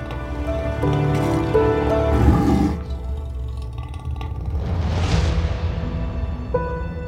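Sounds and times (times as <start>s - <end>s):
steady droning musical background: 0.0s - 7.0s
lions roaring: 1.2s - 4.7s.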